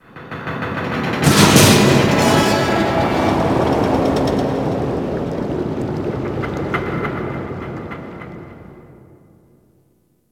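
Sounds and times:
ocean metal bubbles ambience: 1.2 - 9.4.

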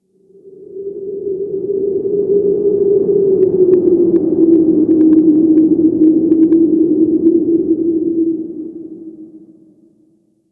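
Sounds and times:
interior wind howling: 0.2 - 9.7.

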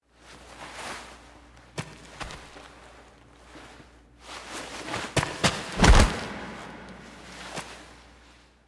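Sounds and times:
foley hand fall: 5.3 - 7.8.

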